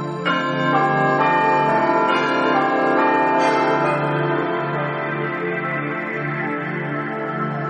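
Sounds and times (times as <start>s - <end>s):
church bell tolling: 0.0s - 7.5s.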